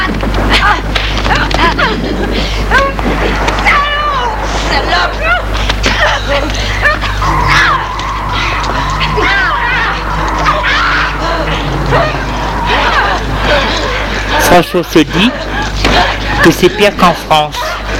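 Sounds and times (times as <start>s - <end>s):
dense loud street din: 0.0s - 14.6s
steady low rumble: 0.2s - 14.4s
car tire squeals and screeches from hard braking: 6.8s - 14.4s
speech: 14.5s - 15.5s, 16.4s - 17.6s.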